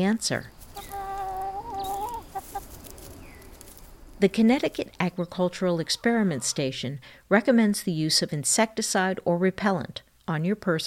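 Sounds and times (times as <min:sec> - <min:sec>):
speech: 0:00.0 - 0:00.6, 0:04.2 - 0:10.8
backyard chickens clucking: 0:00.6 - 0:07.0.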